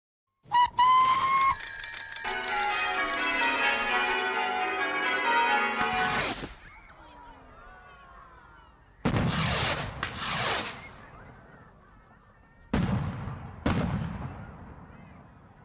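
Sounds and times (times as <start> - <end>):
high whistling pitch: 0.4 - 4.2
bells ringing: 1.0 - 6.2
fireworks exploding: 5.8 - 6.9, 9.0 - 11.3, 12.7 - 15.6.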